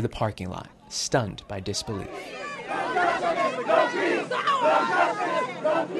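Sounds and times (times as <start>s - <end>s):
speech: 0.0s - 5.9s
protest crowd chanting outdoors outside a courthouse: 1.9s - 5.9s.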